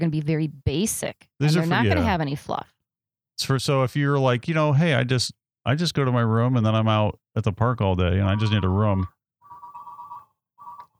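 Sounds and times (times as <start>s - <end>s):
speech: 0.0s - 2.8s, 3.4s - 9.2s
telephone ringing with a steady electronic tone: 8.3s - 10.9s.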